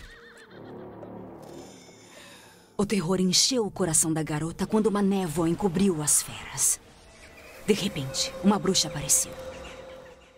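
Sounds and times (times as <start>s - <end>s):
horse neighing loudly and agitatedly: 0.0s - 1.0s
speech: 2.8s - 6.8s, 7.7s - 9.6s.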